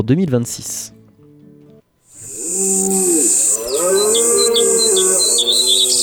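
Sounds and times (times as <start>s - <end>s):
speech: 0.0s - 1.0s, 2.5s - 6.0s
birds chirping: 2.1s - 6.0s
deep drawn-out lowing call with wavering pitch: 2.2s - 6.0s.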